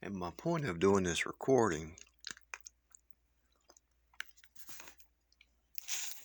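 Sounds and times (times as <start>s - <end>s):
speech: 0.0s - 2.1s
chewing pineapple yogurt with cinnamon: 1.9s - 6.2s
wet mouth sounds eating pineapple yogurt with cinnamon: 2.0s - 6.2s.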